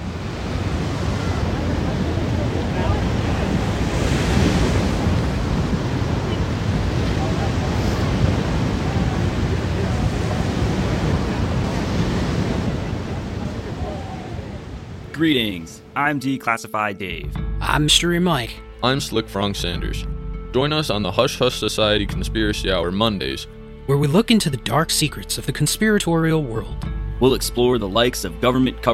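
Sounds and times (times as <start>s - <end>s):
gusty wind rumbling against the microphone: 0.0s - 15.1s
ocean surf roaring with waves washing: 0.0s - 17.3s
speech: 15.2s - 28.9s.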